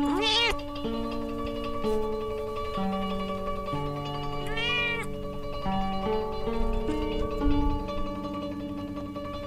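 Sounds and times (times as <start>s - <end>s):
Japanese Bobtail cat meowing: 0.0s - 0.6s, 4.4s - 5.1s
gentle sustained music: 0.0s - 9.4s.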